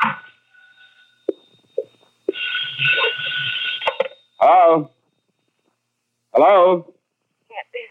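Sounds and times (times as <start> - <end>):
telephone ringing: 0.0 - 5.8
thin steady tone: 0.0 - 7.8
speech: 4.4 - 5.0, 6.4 - 6.9.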